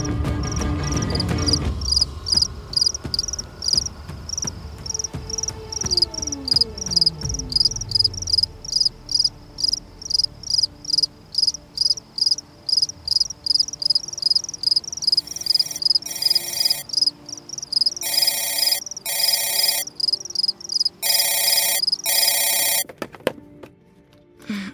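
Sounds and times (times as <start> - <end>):
crickets chirping at night: 0.4 - 22.8
telephone ringing: 15.2 - 22.8.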